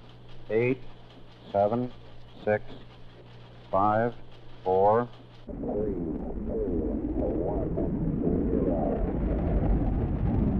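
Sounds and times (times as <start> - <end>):
speech: 0.5 - 2.9, 3.7 - 6.6
rocket engines roaring at liftoff of a Mercury spacecraft launch: 5.5 - 10.5.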